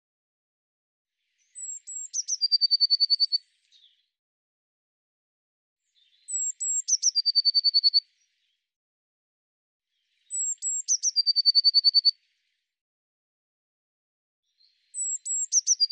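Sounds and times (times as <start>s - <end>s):
Eurasian blue tit giving high descending notes and rapid trill: 1.2s - 4.1s, 5.9s - 8.7s, 9.9s - 12.6s, 14.4s - 15.9s.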